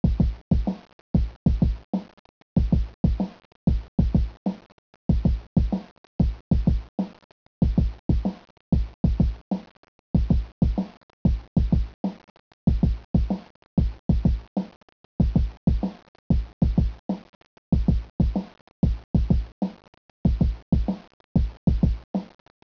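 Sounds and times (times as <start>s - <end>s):
drumbeat: 0.0s - 1.8s, 2.6s - 4.4s, 5.1s - 6.9s, 7.6s - 9.5s, 10.2s - 14.5s, 15.2s - 17.0s, 17.7s - 19.5s, 20.3s - 22.0s.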